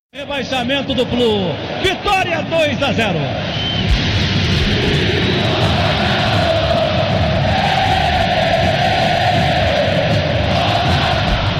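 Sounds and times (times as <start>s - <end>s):
speech: 0.1s - 3.6s
massive crowd of football fans singing a chant in a stadium: 3.3s - 11.5s.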